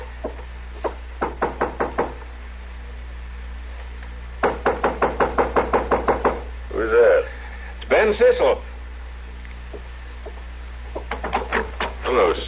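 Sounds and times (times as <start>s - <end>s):
low hum: 0.0s - 12.4s
firm knocks on a wooden hotel room door: 0.2s - 2.2s, 4.4s - 6.4s, 11.0s - 12.0s
speech: 8.0s - 8.7s.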